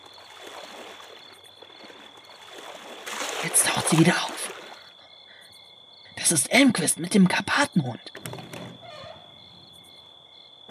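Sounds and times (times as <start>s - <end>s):
swimming pool water lapping as someone eases slowly in: 0.0s - 5.0s
speech: 3.4s - 4.4s, 6.3s - 8.4s.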